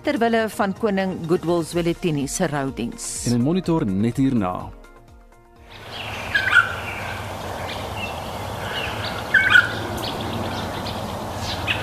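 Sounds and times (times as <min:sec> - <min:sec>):
speech: 0:00.0 - 0:04.8
endangered bird singing: 0:05.7 - 0:11.8.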